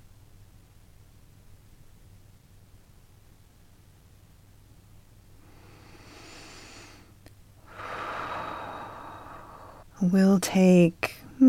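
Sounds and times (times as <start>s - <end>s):
slow deep breathing close to the mic: 5.4s - 9.9s
speech: 10.0s - 11.4s.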